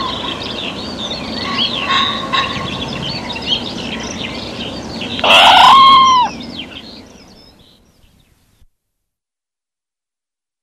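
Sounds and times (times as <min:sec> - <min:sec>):
small birds chirping and trilling: 0:00.0 - 0:08.6
red squirrel uttering a strained, drawn-out cry: 0:05.2 - 0:06.4.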